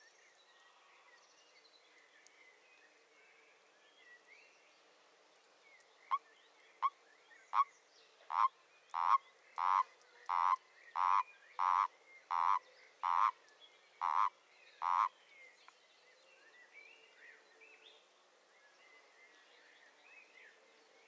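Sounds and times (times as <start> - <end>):
common toad giving soft rasping croaks: 8.3 - 13.4, 14.0 - 15.1.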